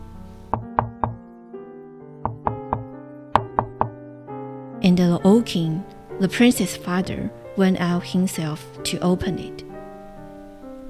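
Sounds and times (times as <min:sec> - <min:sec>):
loud forceful knocking on a door: 0:00.5 - 0:01.2, 0:02.2 - 0:04.0
speech: 0:04.8 - 0:09.7.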